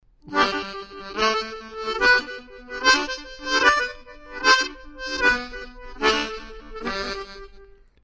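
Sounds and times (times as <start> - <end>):
harmonica playing: 0.3 - 7.8.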